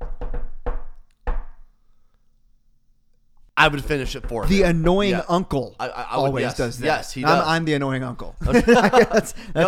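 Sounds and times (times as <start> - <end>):
knocking on a door: 0.0 - 1.7, 3.6 - 5.2
speech: 3.6 - 9.6
laughter: 8.2 - 9.6.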